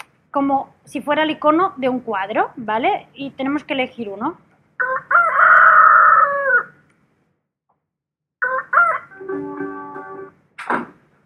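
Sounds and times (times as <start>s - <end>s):
speech: 0.4s - 5.0s
rooster crowing: 4.8s - 6.8s, 8.4s - 9.6s.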